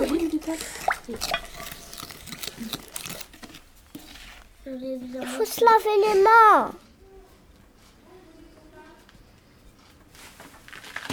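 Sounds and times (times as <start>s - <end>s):
speech: 0.5s - 1.4s, 5.2s - 6.8s
mixture with oil stirred in a bowl: 0.6s - 4.5s.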